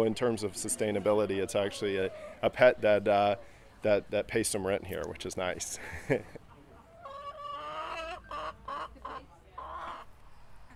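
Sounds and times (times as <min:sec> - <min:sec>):
chickens clucking and squawking: 0:00.0 - 0:04.0, 0:06.4 - 0:10.7
speech: 0:00.0 - 0:06.4
faint murmur: 0:00.0 - 0:10.7
laughter: 0:05.7 - 0:06.5.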